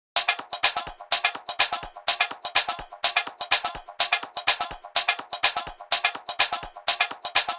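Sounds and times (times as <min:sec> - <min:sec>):
gated percussion: 0:00.1 - 0:07.5.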